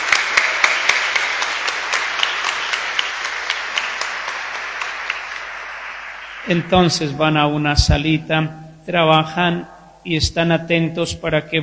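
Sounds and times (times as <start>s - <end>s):
audience applauding children: 0.0s - 7.3s
speech: 6.5s - 11.6s.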